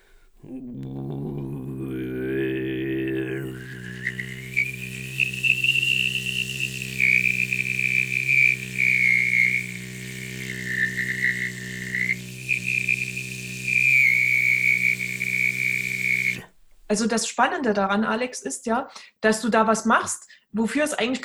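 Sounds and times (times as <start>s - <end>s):
Mongolian-style throat singing with deep undertone drone and whistling overtone melody: 0.0s - 17.0s
speech: 0.4s - 0.9s, 16.9s - 21.2s.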